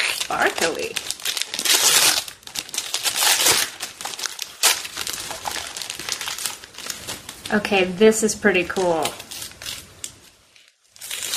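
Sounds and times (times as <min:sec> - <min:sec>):
plastic package wrapping crinkling as a package is opened: 0:00.0 - 0:11.3
speech: 0:00.3 - 0:01.2, 0:07.5 - 0:09.2.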